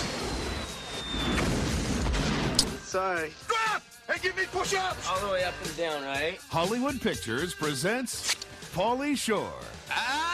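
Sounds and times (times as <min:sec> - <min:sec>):
thin high whistle sliding downward in a movie trailer: 0:00.0 - 0:01.6
grenade explosion with dense loud rumbling roar in a movie trailer: 0:00.0 - 0:02.8
speech: 0:02.9 - 0:10.1.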